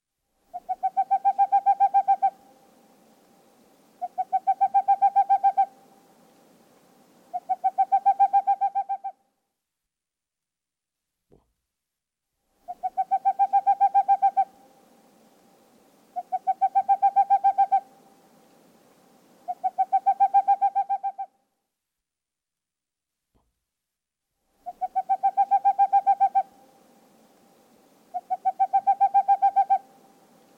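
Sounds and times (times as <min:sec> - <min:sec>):
boreal owl hooting in staccato trills: 0:00.5 - 0:02.5, 0:04.0 - 0:05.8, 0:07.3 - 0:09.2, 0:12.6 - 0:14.6, 0:16.1 - 0:18.0, 0:19.4 - 0:21.4, 0:24.6 - 0:26.8, 0:28.1 - 0:30.0.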